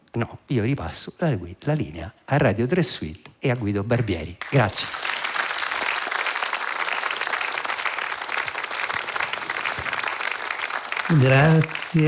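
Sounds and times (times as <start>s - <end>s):
speech: 0.2s - 5.0s, 11.1s - 12.0s
large audience applauding in a hall: 4.4s - 12.0s.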